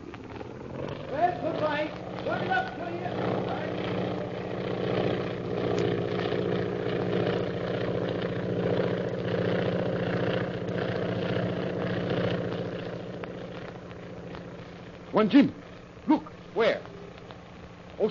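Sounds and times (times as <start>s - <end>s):
propeller airplane engine in flight: 0.0s - 18.1s
speech: 1.8s - 3.3s, 15.2s - 15.6s.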